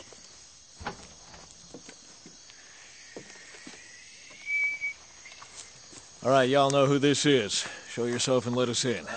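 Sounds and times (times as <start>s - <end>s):
person whistling as a signal: 4.3s - 5.0s
speech: 6.3s - 9.1s.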